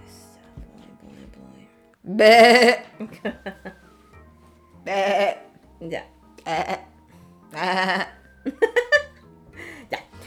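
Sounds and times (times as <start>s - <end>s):
quiet voiced sounds: 0.0s - 8.5s, 9.1s - 10.2s
speech: 2.0s - 3.8s, 4.8s - 6.9s, 7.5s - 8.6s
person bleating like a sheep: 2.1s - 3.1s, 4.9s - 6.9s, 7.6s - 8.1s
laughter: 2.9s - 3.9s, 7.6s - 10.2s.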